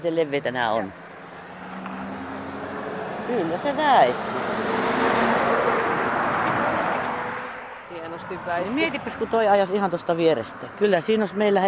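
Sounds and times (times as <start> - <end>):
speech: 0.0 - 1.0, 3.3 - 5.2, 8.2 - 11.6
car driving past on an asphalt road: 0.8 - 9.3.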